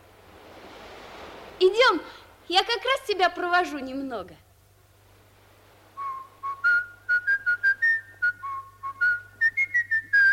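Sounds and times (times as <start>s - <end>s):
speech: 1.6s - 4.4s
person whistling a lively tune: 6.0s - 10.3s.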